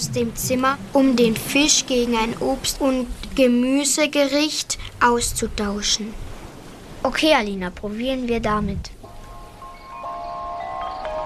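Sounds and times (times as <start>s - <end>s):
speech: 0.0s - 6.3s, 7.0s - 9.0s
wind rustling leaves: 0.0s - 11.2s
faint birdsong: 9.1s - 11.2s.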